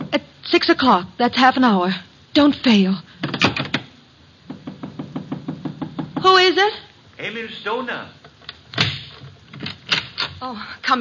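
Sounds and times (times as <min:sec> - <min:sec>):
speech: 0:00.1 - 0:03.1, 0:06.2 - 0:08.2, 0:10.4 - 0:11.0
knocking at a door: 0:03.2 - 0:06.6.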